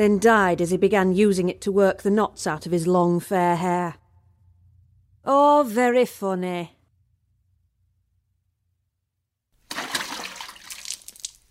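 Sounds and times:
speech: 0.0 - 4.0, 5.2 - 6.8
bucket of water tipped down a drain: 9.7 - 11.4.

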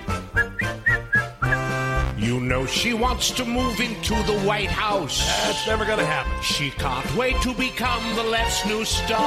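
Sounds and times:
person whistling a brief bouncy tune: 0.3 - 1.8
speech: 2.5 - 9.2.

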